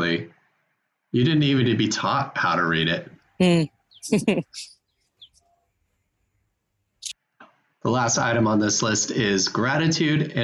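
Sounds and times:
birds chirping outdoors: 0.0s - 7.7s
speech: 1.1s - 4.8s, 7.8s - 10.4s.

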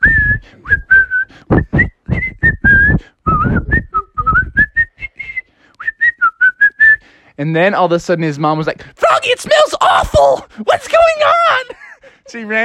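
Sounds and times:
person whistling a lively tune: 0.0s - 7.0s
speech: 7.4s - 12.6s.

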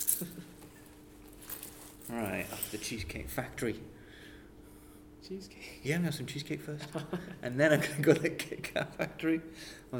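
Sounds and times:
keys jingling: 0.0s - 3.0s
quiet hum: 0.0s - 9.9s
speech: 2.1s - 4.0s, 5.3s - 9.9s.

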